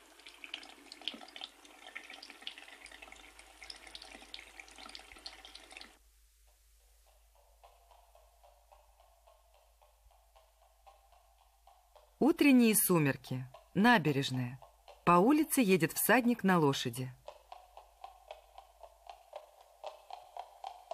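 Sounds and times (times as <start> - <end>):
tap water running into a bathroom sink: 0.0 - 6.0
water dripping: 0.0 - 6.0, 7.0 - 20.9
speech: 12.2 - 17.2.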